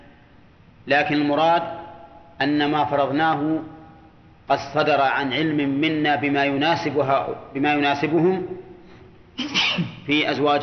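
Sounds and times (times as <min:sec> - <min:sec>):
speech: 0:00.8 - 0:01.8, 0:02.4 - 0:03.8, 0:04.5 - 0:08.7, 0:09.4 - 0:10.6
person sneezing: 0:09.4 - 0:10.1.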